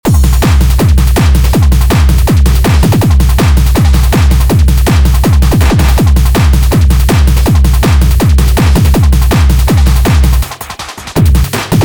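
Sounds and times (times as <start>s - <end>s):
hard techno drum beat: 0.0s - 11.8s.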